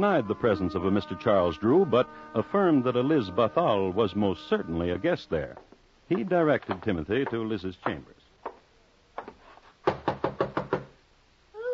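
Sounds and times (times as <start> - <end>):
speech: 0.0 - 8.2
knocking on a door: 9.2 - 11.0.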